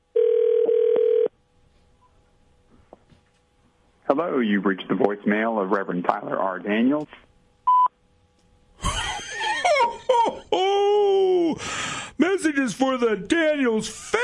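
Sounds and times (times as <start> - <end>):
steady electronic telephone ring tone: 0.1 - 1.3
speech: 4.1 - 7.2, 12.6 - 14.1
laughter: 8.8 - 11.5.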